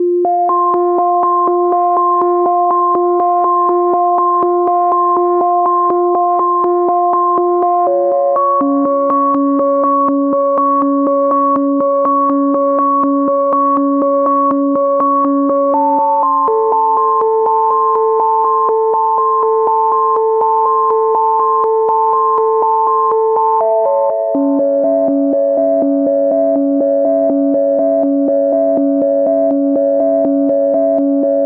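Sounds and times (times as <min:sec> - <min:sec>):
122 BPM melodic arpeggios in B major and G minor: 0:00.0 - 0:31.4.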